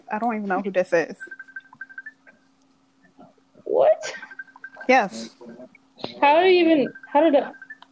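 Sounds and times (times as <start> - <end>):
thin steady tone: 0.0 - 7.9
speech: 0.1 - 1.4, 4.9 - 7.6
phone app ringtone chiming for an incoming call: 1.2 - 2.2, 4.1 - 5.2, 6.2 - 7.8.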